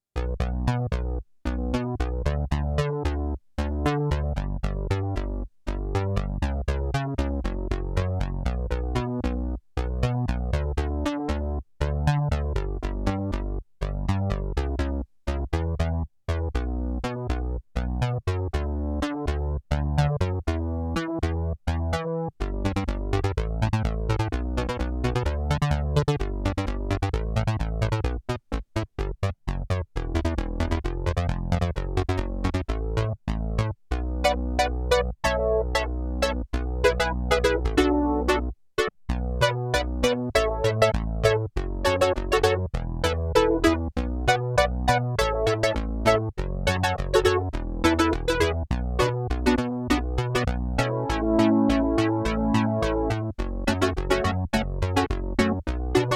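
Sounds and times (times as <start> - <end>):
SIEL DK 80 synthesizer bass: 0.2 - 28.2, 29.5 - 56.1.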